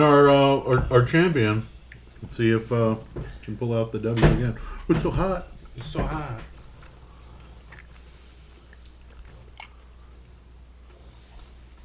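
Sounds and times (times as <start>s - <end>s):
speech: 0.0s - 6.5s
low steady hum: 0.0s - 11.8s
people chewing food: 1.7s - 3.7s, 4.6s - 11.8s.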